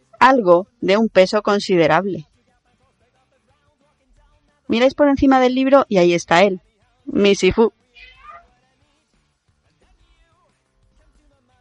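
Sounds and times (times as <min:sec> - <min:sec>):
speech: 0:00.2 - 0:02.3, 0:04.7 - 0:07.8
house cat meowing in a sunny garden: 0:08.0 - 0:08.5.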